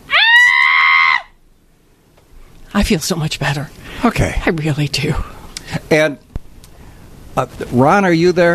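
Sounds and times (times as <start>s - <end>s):
loud high-pitched human scream of release: 0.0s - 1.4s
speech: 2.8s - 6.2s, 7.4s - 8.5s.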